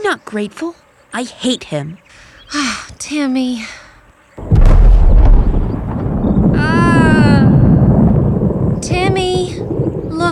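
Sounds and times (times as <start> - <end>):
speech: 0.1 - 3.8
sonic boom: 4.4 - 8.2
deep, heavy rumble: 4.4 - 10.3.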